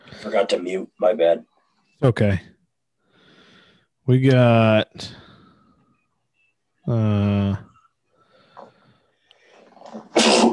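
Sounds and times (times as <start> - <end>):
speech: 0.2 - 2.5, 4.0 - 5.3, 6.9 - 7.7
sneeze: 10.0 - 10.5.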